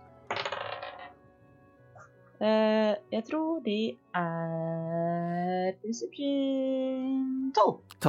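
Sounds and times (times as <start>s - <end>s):
dice clattering across a hard tabletop: 0.3s - 1.2s
speech: 2.4s - 8.0s.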